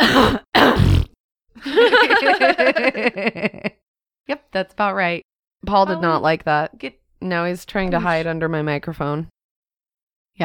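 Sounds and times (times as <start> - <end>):
cough: 0.0 - 1.1
person imitating a fart: 0.0 - 1.2
laughter and chuckling: 1.6 - 3.8
speech: 1.7 - 9.4.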